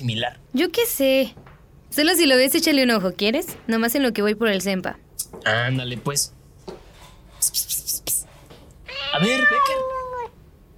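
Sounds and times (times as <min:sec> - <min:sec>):
speech: 0:00.0 - 0:06.4, 0:07.4 - 0:07.8, 0:09.2 - 0:10.0
cat meowing: 0:08.8 - 0:10.4.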